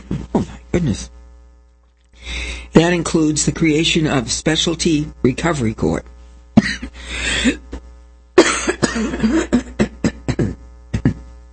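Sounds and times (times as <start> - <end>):
person clearing throat: 0.0 - 0.7, 6.6 - 7.8, 8.4 - 11.4
person coughing harshly: 0.0 - 0.7, 6.6 - 7.8, 8.4 - 11.3
speech: 0.4 - 1.2, 2.2 - 6.1.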